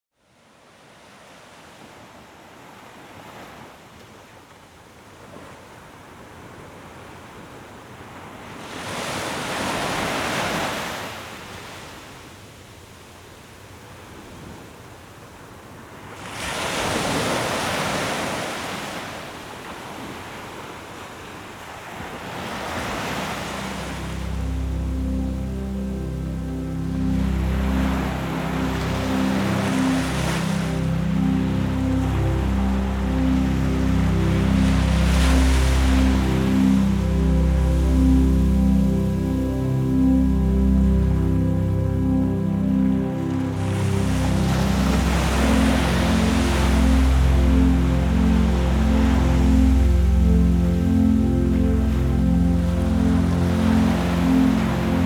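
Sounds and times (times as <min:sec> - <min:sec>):
ocean: 0:00.2 - 0:55.0
relaxing meditative music: 0:07.3 - 0:12.4, 0:21.8 - 0:55.0.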